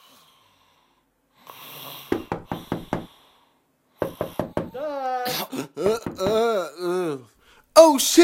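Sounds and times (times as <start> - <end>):
sharp knocking on a door: 2.1 - 3.1, 4.0 - 4.8, 5.8 - 6.5
drawn-out wordless vocal groan: 4.7 - 7.3.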